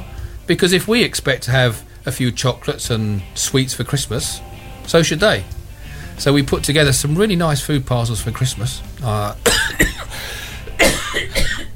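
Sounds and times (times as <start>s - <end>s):
speech: 0.5s - 5.6s, 6.2s - 11.0s
harsh fit of coughing: 9.4s - 11.7s.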